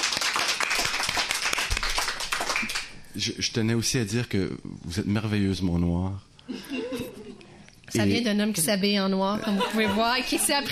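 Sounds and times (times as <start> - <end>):
crowd applauding: 0.0 - 3.0
speech: 3.2 - 6.8, 7.9 - 10.7
laughter: 6.5 - 7.5, 9.4 - 10.7.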